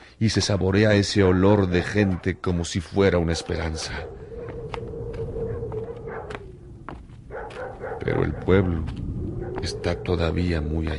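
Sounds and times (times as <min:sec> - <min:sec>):
speech: 0:00.2 - 0:04.2, 0:08.0 - 0:09.0, 0:09.6 - 0:10.9
dogs barking in a village across a dry cracked plain: 0:00.2 - 0:10.9
steady low hum and rumbling noise: 0:03.9 - 0:10.9.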